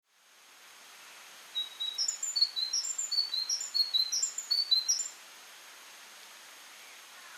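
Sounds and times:
faint steady hiss: 0.0s - 7.3s
great tit calls with short high chirps: 1.6s - 5.1s.

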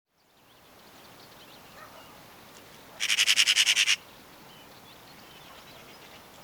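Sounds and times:
Eurasian magpie rattling chatter: 3.0s - 4.0s.

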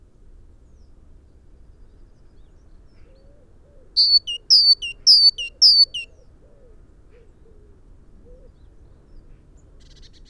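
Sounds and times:
great tit singing two-note phrases: 4.0s - 6.0s.

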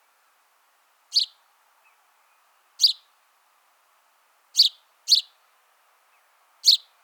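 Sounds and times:
house sparrow chirping: 1.1s - 1.4s, 2.8s - 3.1s, 4.6s - 5.4s, 6.6s - 6.9s.

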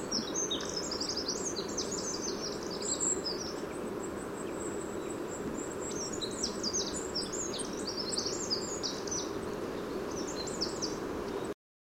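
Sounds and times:
Eurasian wren song: 0.0s - 11.6s
steady low-pitched background noise: 0.0s - 11.6s.

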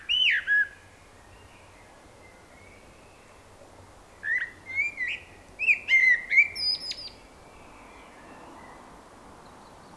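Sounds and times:
Common blackbird singing: 4.3s - 7.2s.

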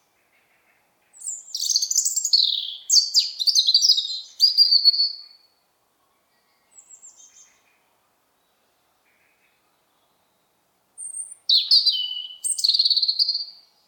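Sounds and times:
European robin Erithacus rubecula singing: 0.0s - 13.8s.

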